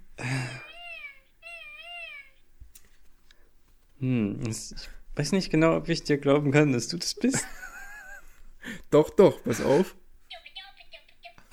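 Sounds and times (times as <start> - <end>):
person's voice mimicking a cartoon mole's squeaky noises: 0.3 - 2.4
speech: 4.0 - 7.6, 8.9 - 10.0
laughter: 7.3 - 8.4.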